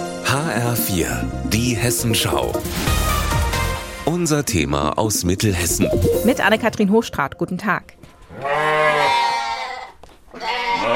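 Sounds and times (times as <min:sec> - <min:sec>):
speech: 0:00.4 - 0:03.2, 0:04.0 - 0:08.6
sheep bleating: 0:08.3 - 0:10.9.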